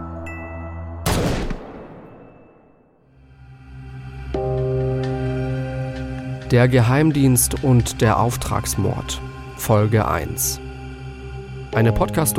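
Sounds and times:
single loud gunshot with echo: 1.0 - 2.4
low sustained musical drone: 3.2 - 12.3
speech: 6.5 - 10.6, 11.7 - 12.3.

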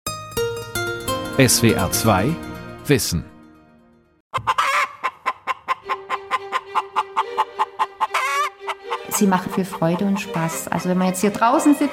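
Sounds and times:
speech: 1.4 - 3.3, 4.4 - 4.6, 9.2 - 11.9
chicken squawking: 4.3 - 10.8
chickens clucking: 4.3 - 11.9.

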